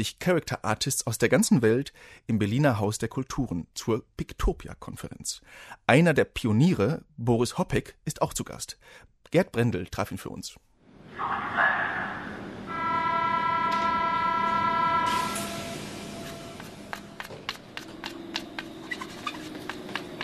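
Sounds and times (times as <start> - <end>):
speech: 0.0 - 12.0
U-Bahn train rumbling into an underground station: 10.9 - 20.2
brief horn-like hum of U-Bahn train: 11.2 - 17.3
wheels clicking over track joints: 16.6 - 20.2.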